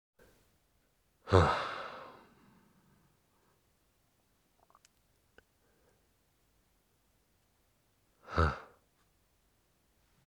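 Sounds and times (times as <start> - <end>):
man sighing: 1.3 - 2.4, 8.2 - 8.8.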